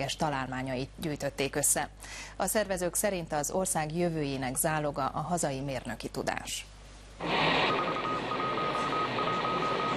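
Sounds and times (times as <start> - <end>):
speech: 0.0 - 7.8
static hiss: 6.9 - 9.9
beeping radio signal from the first Hungarian satellite: 7.2 - 9.9.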